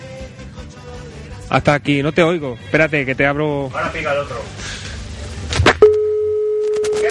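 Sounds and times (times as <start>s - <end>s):
speech: 1.5s - 4.8s
telephone beep after a call is hung up: 5.8s - 7.0s.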